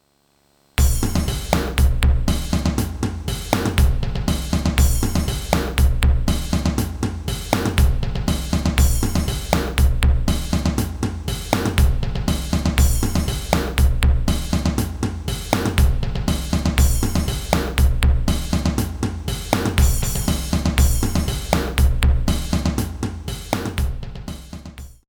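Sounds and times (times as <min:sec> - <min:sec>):
realistic drum kit: 0:00.8 - 0:25.0.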